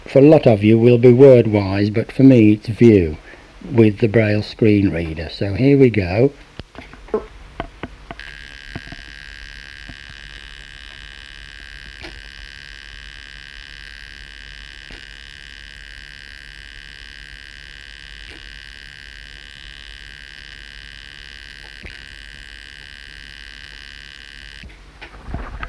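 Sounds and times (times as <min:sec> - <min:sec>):
speech: 0:00.1 - 0:06.5
high-pitched electronic buzz of data dumped from a machine into a computer: 0:08.1 - 0:24.7.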